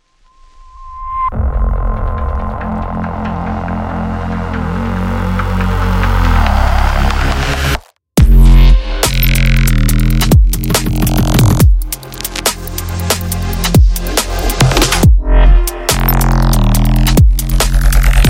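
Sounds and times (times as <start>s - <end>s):
rumble bass synth: 1.3s - 18.2s.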